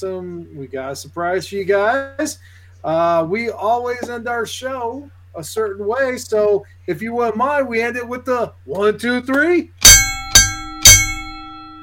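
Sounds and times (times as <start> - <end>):
speech: 0.0 - 10.0
real bell struck: 9.8 - 11.8.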